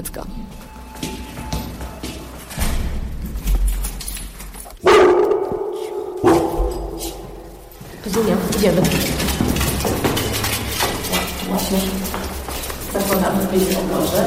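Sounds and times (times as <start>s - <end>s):
speech: 0.0s - 1.4s, 8.1s - 9.2s, 11.7s - 14.2s
rustling noise: 0.0s - 14.2s
dogs barking inside a car: 4.8s - 9.0s.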